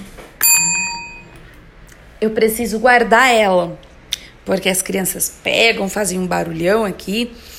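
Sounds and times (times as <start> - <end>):
bright metallic bell ding: 0.4 - 1.4
speech: 2.2 - 3.9, 4.5 - 7.5.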